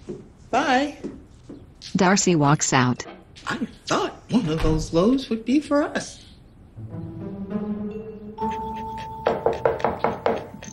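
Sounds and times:
speech: 0.5s - 1.1s, 1.9s - 6.2s
ringing tone: 7.9s - 9.9s
firm knocks on a front door: 9.2s - 10.6s.

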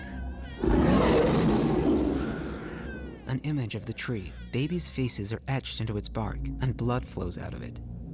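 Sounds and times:
deep loud roar from a huge black wolf's head: 0.6s - 3.3s
speech: 3.3s - 8.1s.

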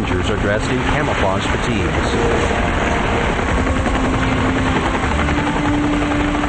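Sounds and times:
several helicopters carrying Rangers flying overhead: 0.0s - 6.4s
speech: 0.2s - 3.2s.

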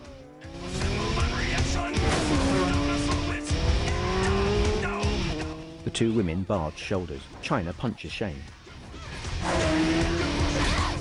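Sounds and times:
motorbike engines roaring as a rider speeds off in pursuit: 0.0s - 6.9s, 9.2s - 11.0s
speech: 6.0s - 8.6s.

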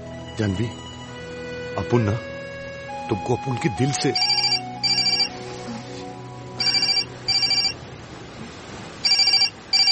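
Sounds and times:
speech: 0.4s - 0.9s, 1.7s - 2.3s, 3.1s - 4.4s
telephone ringing in electronic trills: 4.1s - 5.4s, 6.6s - 7.8s, 9.1s - 9.9s.

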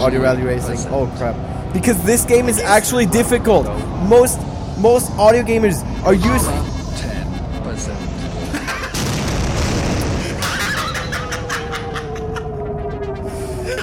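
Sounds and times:
speech: 0.0s - 7.1s
laughter: 6.2s - 9.1s, 10.1s - 13.8s
spaceship exploding in an audio video game: 8.8s - 10.7s.

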